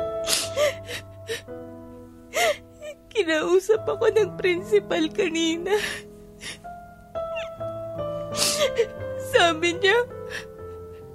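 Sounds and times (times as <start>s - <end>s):
woman sobbing in a school faculty room: 0.3s - 1.5s, 2.3s - 3.0s, 5.5s - 6.7s, 8.3s - 11.1s
speech: 3.3s - 6.0s, 9.6s - 10.2s.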